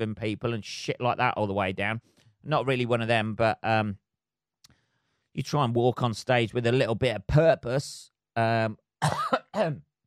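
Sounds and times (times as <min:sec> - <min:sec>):
speech: 0:00.0 - 0:04.0, 0:05.4 - 0:09.9
person coughing heavily: 0:09.0 - 0:09.8.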